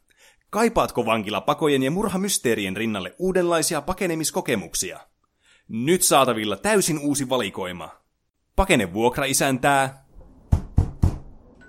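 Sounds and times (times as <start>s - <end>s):
speech: 0.5s - 5.1s, 5.7s - 8.0s, 8.6s - 10.0s
firm knocking on a door: 10.5s - 11.4s.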